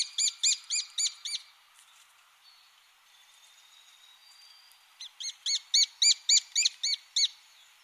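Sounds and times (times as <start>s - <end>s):
lesser spotted woodpecker calling high kee-kee-kee notes: 0.0s - 1.5s, 5.0s - 7.4s.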